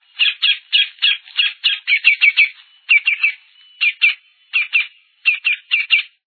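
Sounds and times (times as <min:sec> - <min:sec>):
campo flicker calling: 0:00.0 - 0:06.2.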